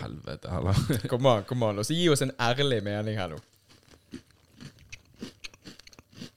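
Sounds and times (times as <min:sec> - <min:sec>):
speech: 0:00.2 - 0:03.5
laughter: 0:00.6 - 0:01.2
crunchy chewing of a snack: 0:03.4 - 0:06.3.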